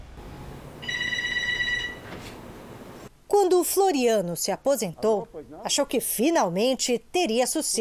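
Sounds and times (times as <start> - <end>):
quiet hiss: 0.0 - 7.7
electronic telephone trilling ring: 0.2 - 3.0
speech: 3.4 - 7.7.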